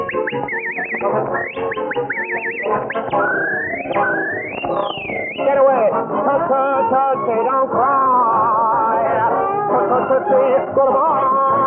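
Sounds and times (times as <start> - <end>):
person whistling a lively bird-like tune with warbling trills: 0.0 - 5.6
musical accompaniment: 0.0 - 11.6
speech: 6.0 - 8.1, 9.9 - 11.6.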